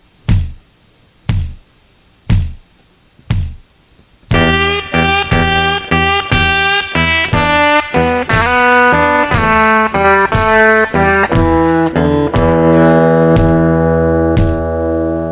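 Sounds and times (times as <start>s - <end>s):
kick drum thumps: 0.2s - 0.6s, 1.2s - 1.7s, 2.3s - 3.7s, 4.3s - 4.7s, 5.3s - 5.6s, 6.3s - 6.6s, 9.3s - 9.6s, 10.3s - 10.7s, 11.3s - 14.8s
blues guitar riff with slides on the third string: 4.3s - 15.3s.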